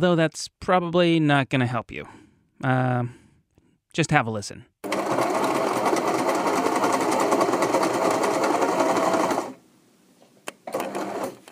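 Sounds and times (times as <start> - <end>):
speech: 0.0 - 3.2, 3.9 - 5.3
sewing machine running: 4.8 - 9.6, 10.7 - 11.4.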